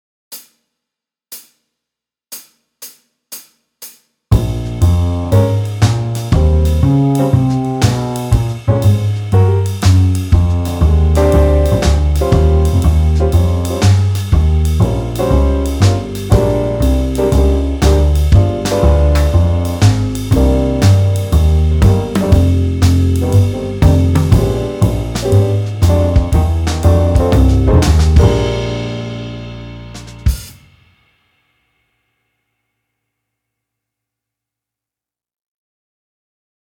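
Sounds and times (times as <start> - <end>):
blues backing track at 120 bpm: 4.3 - 30.6.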